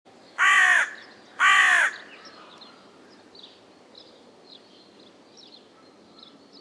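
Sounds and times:
carrion crow Corvus corone giving drawn-out rasping caws: 0:00.4 - 0:02.5.

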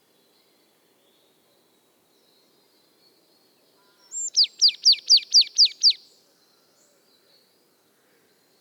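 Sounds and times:
Marsh Tit Poecile palustris calling: 0:04.2 - 0:06.0.

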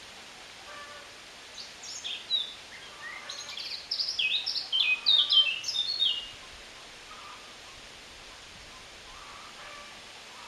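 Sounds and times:
Eurasian blackcap song, Sylvia atricapilla: 0:01.5 - 0:06.5.

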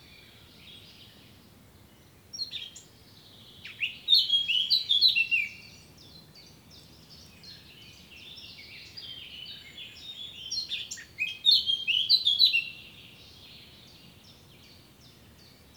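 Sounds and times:
Eurasian blackcap Sylvia atricapilla warbling song: 0:02.3 - 0:15.7.

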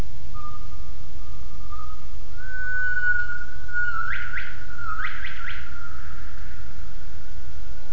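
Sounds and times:
constant low rumble: 0:00.0 - 0:07.9
gibbon call: 0:01.6 - 0:06.4.

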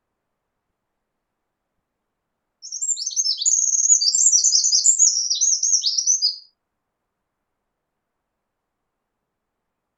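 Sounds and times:
Eurasian wren Troglodytes troglodytes singing: 0:02.6 - 0:06.5.

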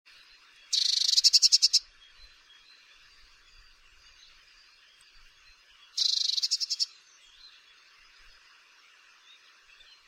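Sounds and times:
Eurasian blue tit Cyanistes caeruleus chattering rattles: 0:00.7 - 0:01.8, 0:06.0 - 0:06.9.

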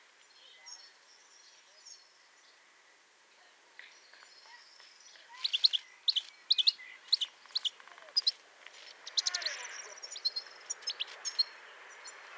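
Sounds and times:
European goldfinch Carduelis carduelis twittering chirps: 0:05.3 - 0:12.3.

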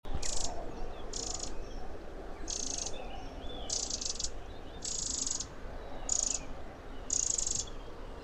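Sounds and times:
Eurasian wren Troglodytes troglodytes harsh buzzy rasping calls: 0:00.2 - 0:01.8, 0:02.5 - 0:03.0, 0:03.6 - 0:07.8.

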